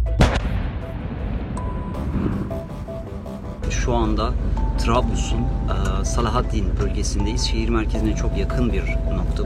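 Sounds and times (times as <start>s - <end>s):
controlled detonation of unexploded munitions: 0.2s - 2.7s
speech: 3.7s - 9.4s.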